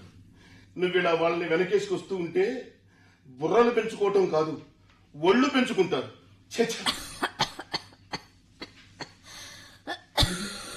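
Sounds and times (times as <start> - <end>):
speech: 0.8 - 7.0
woman coughing in short harsh bursts: 6.7 - 9.3, 9.9 - 10.7.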